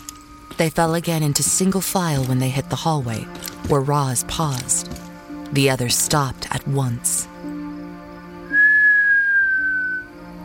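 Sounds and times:
speech: 0.6 - 7.3
low human whistle in a hallway: 8.5 - 10.2.

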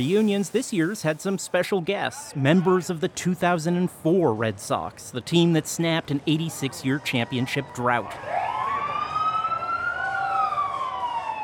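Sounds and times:
speech: 0.0 - 8.4
police escort siren wailing: 7.1 - 11.4.

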